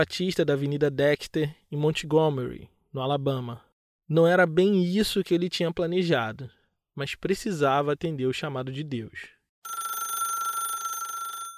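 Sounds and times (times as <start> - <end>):
speech: 0.0 - 9.8
telephone bell ringing: 9.6 - 11.5.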